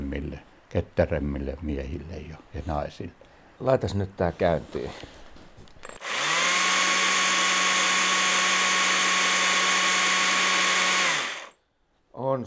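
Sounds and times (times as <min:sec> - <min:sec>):
speech: 0:00.4 - 0:05.2
battery chainsaw running with chain whirring: 0:06.0 - 0:11.6.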